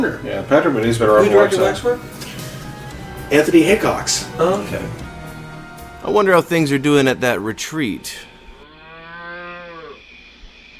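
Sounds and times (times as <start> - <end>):
speech: 0.0 - 2.4, 3.3 - 5.0, 6.0 - 8.3
cow mooing in a pasture: 8.2 - 10.0.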